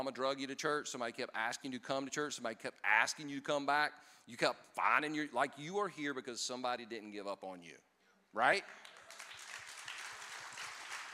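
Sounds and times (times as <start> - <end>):
speech: 0.0 - 8.9
crowd applauding: 8.7 - 11.1.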